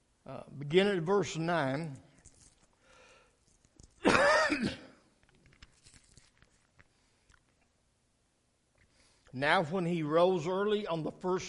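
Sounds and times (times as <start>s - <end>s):
speech: 0.2s - 2.0s, 9.4s - 11.4s
person coughing and clearing throat: 4.0s - 5.1s.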